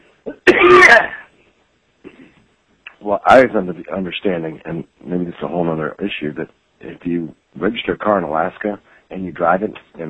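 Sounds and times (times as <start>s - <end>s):
harsh cough: 0.3s - 1.2s
speech: 0.9s - 1.2s, 3.0s - 10.0s.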